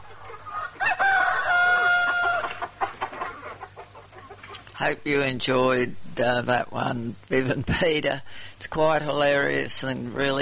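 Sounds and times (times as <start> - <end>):
clucking: 0.0 - 4.8
low steady hum: 0.0 - 10.4
rooster crowing: 0.5 - 2.6
speech: 4.8 - 10.4.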